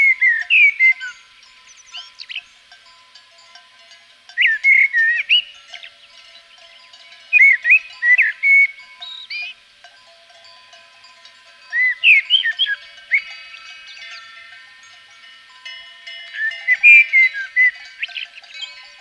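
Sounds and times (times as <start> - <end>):
common blackbird fluting whistled song in Provence: 0.0 - 2.6, 4.3 - 9.6, 11.7 - 15.0, 16.3 - 18.8.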